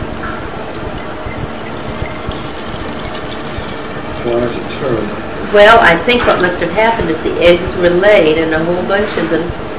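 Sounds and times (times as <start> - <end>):
milk glugging and splashing out of a bottle: 0.7 - 4.2
speech: 5.5 - 9.6.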